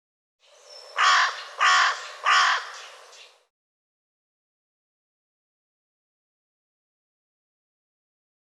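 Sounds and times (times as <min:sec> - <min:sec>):
bird cawing harshly: 0:01.0 - 0:02.9.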